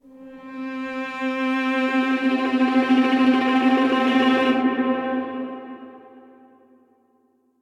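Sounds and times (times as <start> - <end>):
MPE Spectral string quartet instruments with slide and pressure: 0.4 - 6.0.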